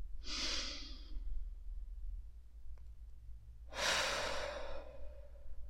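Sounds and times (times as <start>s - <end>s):
deep inhaling breaths during a guided meditation: 0.2s - 1.2s, 3.7s - 5.6s.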